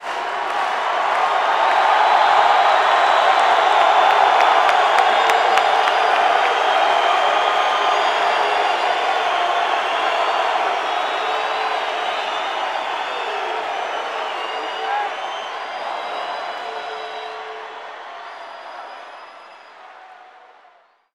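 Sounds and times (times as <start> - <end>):
basketball crowd cheering: 0.0 - 21.1.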